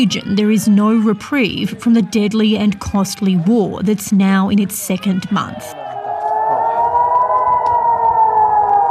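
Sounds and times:
speech: 0.0s - 5.8s
air raid siren wailing with wavering pitch: 5.3s - 8.8s.

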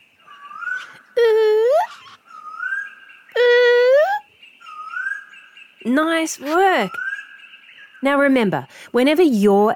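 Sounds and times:
human voice imitating a koel's call: 0.8s - 2.2s, 3.3s - 4.3s
speech: 5.9s - 7.0s, 8.0s - 9.7s.

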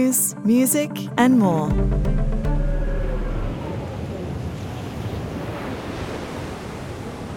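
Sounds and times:
speech: 0.0s - 2.4s
wind up to 150 km/h roaring on the Southern Ocean: 2.4s - 7.3s
rough waves 10 metres high on the Southern Ocean: 2.6s - 7.3s.

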